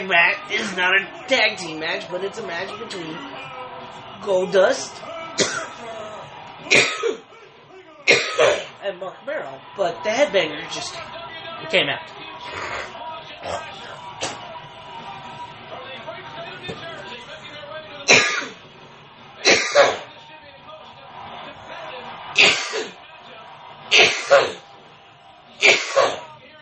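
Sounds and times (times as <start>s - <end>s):
speech: 0.1s - 3.5s, 4.2s - 5.6s, 6.7s - 7.2s, 8.4s - 13.8s
person coughing: 5.4s - 5.8s, 6.7s - 7.2s, 8.1s - 8.7s, 18.1s - 18.6s, 19.5s - 20.0s, 25.6s - 26.3s.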